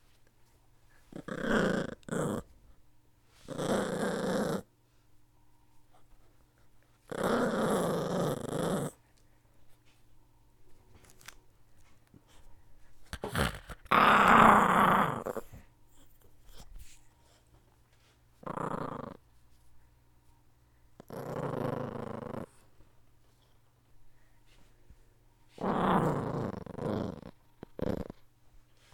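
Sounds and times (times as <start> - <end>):
dog growling: 1.1 - 2.5, 3.5 - 4.7, 7.1 - 9.0, 13.2 - 15.6, 18.4 - 19.2, 21.0 - 22.7, 25.6 - 28.2.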